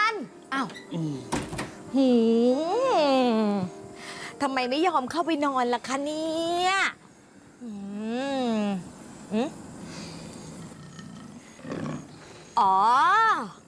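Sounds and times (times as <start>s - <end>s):
speech: 0.5s - 3.7s, 4.4s - 7.0s, 7.6s - 9.6s, 12.6s - 13.6s
tiger short growl: 9.6s - 12.6s
tiger roaring: 10.5s - 12.5s.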